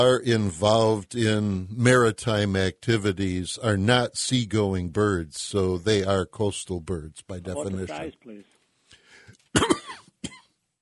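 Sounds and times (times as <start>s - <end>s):
speech: 0.0s - 8.5s
person coughing after choking: 9.5s - 10.6s
throat clearing after choking: 9.6s - 10.6s.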